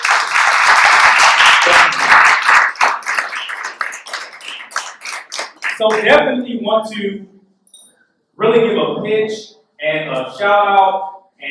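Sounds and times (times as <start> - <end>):
audience applause and hand clapping: 0.0 - 6.2
speech: 5.8 - 7.3, 8.4 - 11.4.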